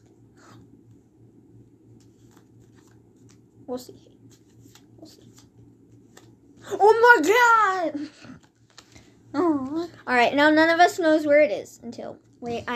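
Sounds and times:
low steady hum: 0:00.0 - 0:12.7
deck of cards being shuffled: 0:01.9 - 0:03.5, 0:04.2 - 0:07.5, 0:08.3 - 0:09.9
speech: 0:03.7 - 0:04.2, 0:06.7 - 0:08.2, 0:09.4 - 0:12.7.

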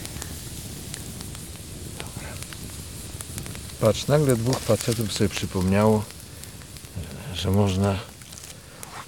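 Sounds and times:
campfire crackling: 0:00.0 - 0:09.0
campfire flames roaring hiss: 0:00.0 - 0:09.0
speech: 0:03.8 - 0:06.2, 0:07.4 - 0:08.1.

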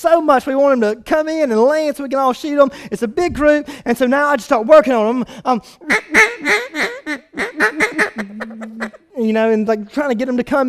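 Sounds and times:
speech: 0:00.0 - 0:10.6
raspy nasal duck quacks blown on a hunting call: 0:05.8 - 0:09.0.

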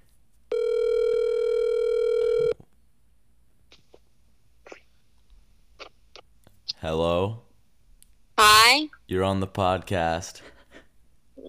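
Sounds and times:
phone call electronic ring tone: 0:00.5 - 0:02.6
speech: 0:06.8 - 0:07.4, 0:09.1 - 0:10.5.

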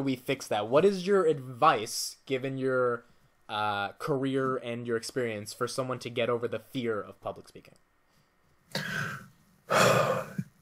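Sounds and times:
speech: 0:00.0 - 0:07.8, 0:08.7 - 0:10.1
person drawing a deep breath before answering a question: 0:08.8 - 0:10.5.

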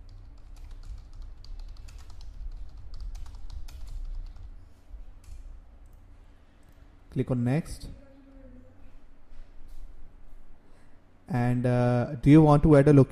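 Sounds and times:
low constant hum: 0:00.0 - 0:13.0
rapid typing on a computer keyboard: 0:00.1 - 0:04.5
speech: 0:07.1 - 0:08.0, 0:11.3 - 0:13.0.

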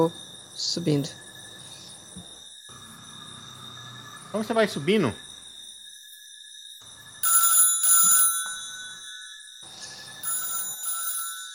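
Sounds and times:
speech: 0:00.0 - 0:01.2, 0:04.3 - 0:05.2
telephone ringing with electronic trill in neighbouring apartment: 0:06.9 - 0:11.5.

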